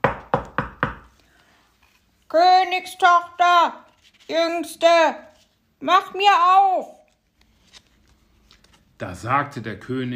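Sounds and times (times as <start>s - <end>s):
firm knocking on a door: 0.0s - 1.1s
speech: 2.3s - 7.0s, 9.0s - 10.1s.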